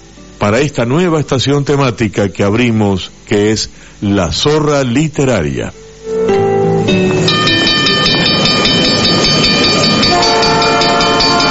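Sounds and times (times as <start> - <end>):
speech: 0.4 - 5.9
train rolling on rails: 6.4 - 11.4
train horn: 7.2 - 11.4.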